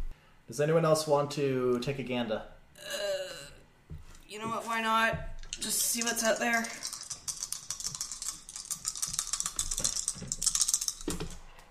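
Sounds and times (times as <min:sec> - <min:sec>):
speech: 0:00.5 - 0:03.0, 0:04.3 - 0:06.9
dice rattling and clattering across a hard surface: 0:05.4 - 0:11.5.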